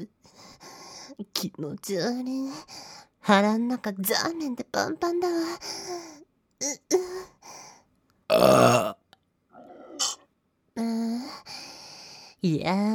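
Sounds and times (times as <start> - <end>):
speech: 1.4 - 7.6, 8.3 - 9.0, 12.4 - 12.9
loud burps, short and gravelly: 8.3 - 9.0.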